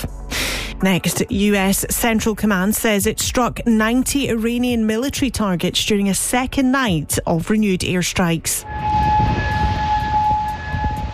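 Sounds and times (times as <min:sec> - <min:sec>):
low rumbling background: 0:00.0 - 0:11.1
speech: 0:00.8 - 0:09.0
air raid siren in Kuwait sounding a steady tone: 0:08.6 - 0:11.1.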